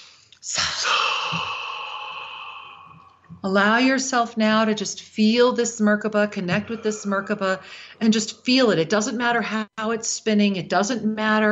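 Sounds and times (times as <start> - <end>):
long deep breath taken in: 0.0 - 3.4, 6.6 - 8.0
speech: 3.4 - 11.4.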